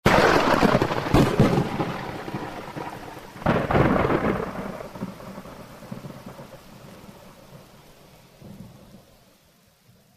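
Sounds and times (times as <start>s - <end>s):
thunder claps in a lightning storm: 0.1s - 7.6s.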